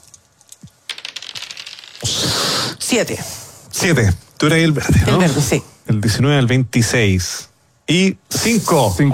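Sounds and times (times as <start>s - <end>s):
dice clattering and rattling: 0.0s - 2.2s
speech: 2.9s - 9.1s.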